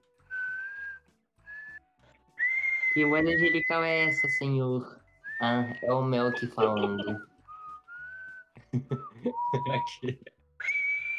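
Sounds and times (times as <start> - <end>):
person whistling sustained notes: 0.3 - 1.8, 2.4 - 4.4, 5.3 - 10.0, 10.6 - 11.1
speech: 3.0 - 7.3, 8.7 - 10.4
laughter: 6.3 - 7.2, 8.6 - 10.3.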